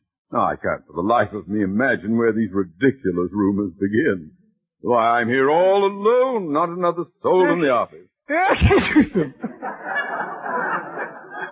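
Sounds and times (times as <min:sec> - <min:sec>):
speech: 0:00.3 - 0:10.2
laughter: 0:08.3 - 0:11.4
person sneezing: 0:08.4 - 0:09.3.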